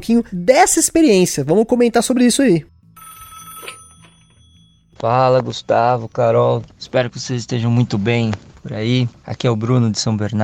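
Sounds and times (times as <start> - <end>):
speech: 0.0 - 2.8, 5.0 - 10.4
telephone ringing with a steady bell tone: 2.8 - 6.0.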